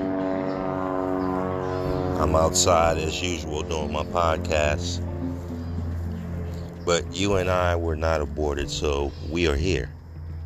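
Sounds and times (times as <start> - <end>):
airplane engine droning overhead with tonal whine: 0.0 - 10.4
speech: 2.2 - 5.1, 6.9 - 10.0.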